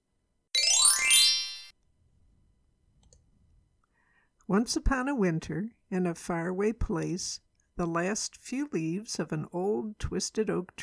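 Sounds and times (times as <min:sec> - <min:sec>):
bright shimmering page-turn chime with rising tinkling tones: 0:00.6 - 0:01.7
speech: 0:04.5 - 0:10.8.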